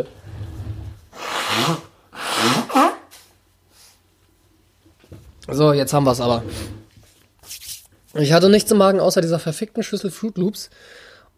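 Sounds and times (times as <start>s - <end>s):
speech: 0.0s - 0.3s, 1.6s - 2.9s, 5.5s - 6.8s, 8.2s - 11.1s
sniff: 1.1s - 3.0s, 3.7s - 4.1s
person blowing nose into a tissue: 1.1s - 3.2s.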